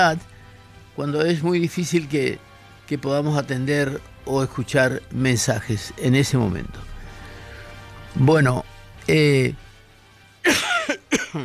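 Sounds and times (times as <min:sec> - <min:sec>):
speech: 0:00.0 - 0:00.3, 0:01.0 - 0:06.9, 0:08.2 - 0:09.6, 0:10.4 - 0:10.7
person with a lingering persistent cough coughing: 0:10.5 - 0:11.4.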